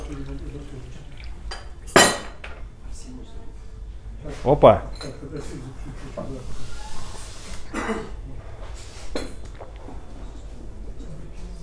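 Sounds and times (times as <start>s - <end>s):
low murmur: 0.0s - 11.6s
speech: 0.1s - 1.1s, 4.2s - 6.9s, 7.8s - 8.5s
glass clinking against a hard surface while someone drinks water: 1.5s - 2.5s.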